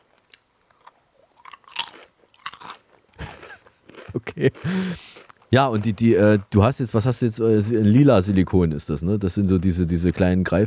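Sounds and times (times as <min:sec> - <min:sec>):
crunchy food bitten and chewed: 0:00.0 - 0:05.9
laughter: 0:04.2 - 0:05.0
speech: 0:04.4 - 0:10.6.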